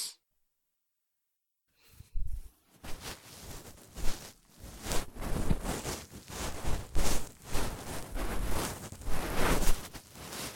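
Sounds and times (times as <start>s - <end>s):
ear cleaning recorded with binaural microphone: 2.1s - 10.5s.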